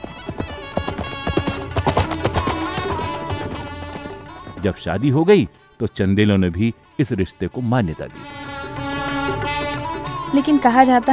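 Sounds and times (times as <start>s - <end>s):
horse hooves clip-clopping at a trot: 0.0s - 4.9s
sustained music: 0.0s - 11.1s
speech: 4.6s - 8.4s, 10.4s - 11.1s.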